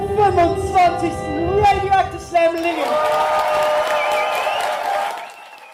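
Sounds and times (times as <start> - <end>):
speech: 0.2 - 1.4
crowd of spectators clapping in a hall at a poetry slam: 2.5 - 5.7
spectators whistling: 3.5 - 5.7.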